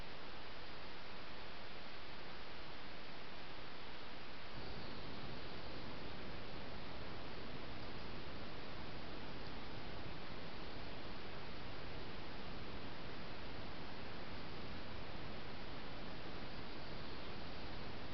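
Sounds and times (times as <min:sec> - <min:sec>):
dense rushing hiss in a mountain forest at 1200 metres: 0:00.0 - 0:18.1.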